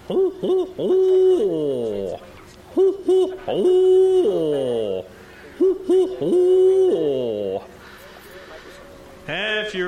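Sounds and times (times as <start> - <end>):
owls hooting in a river swamp at night: 0.0 - 7.7
speech: 0.1 - 7.2, 9.3 - 9.8.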